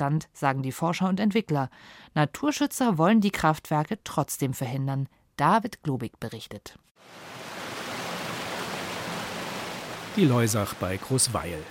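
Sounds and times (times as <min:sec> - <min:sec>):
speech: 0:00.0 - 0:07.3, 0:10.2 - 0:11.6
river water rushing over a rock ramp: 0:07.0 - 0:11.6.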